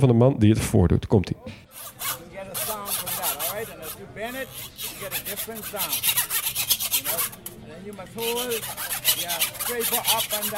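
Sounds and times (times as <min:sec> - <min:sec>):
speech: 0:00.0 - 0:02.2, 0:04.2 - 0:06.3, 0:07.1 - 0:10.5
screwdriver scraping along a bent handsaw: 0:01.7 - 0:07.5, 0:08.2 - 0:10.5.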